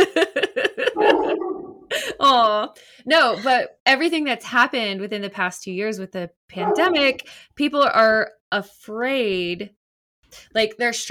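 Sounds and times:
laughter: 0:00.0 - 0:02.5
small dog drawn-out cry: 0:01.0 - 0:01.9, 0:06.6 - 0:07.2
speech: 0:02.3 - 0:11.1
small dog yapping: 0:06.6 - 0:07.2.

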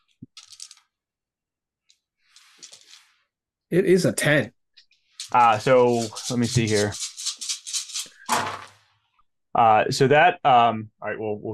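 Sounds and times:
dice rolling on a hard table in a tabletop role-playing game: 0:00.3 - 0:00.9, 0:02.4 - 0:03.1, 0:05.2 - 0:08.8
speech: 0:03.7 - 0:04.6, 0:05.3 - 0:07.0, 0:09.6 - 0:11.5.

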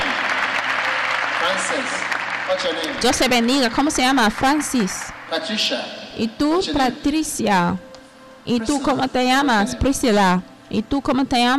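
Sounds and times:
crowd applauding in a room: 0:00.0 - 0:06.2
speech: 0:01.5 - 0:11.5.

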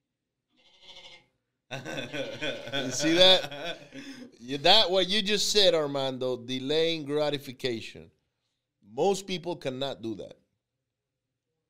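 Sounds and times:
goat bleating: 0:00.6 - 0:01.3
laughter: 0:01.7 - 0:04.6
speech: 0:01.7 - 0:08.2, 0:08.9 - 0:10.4.

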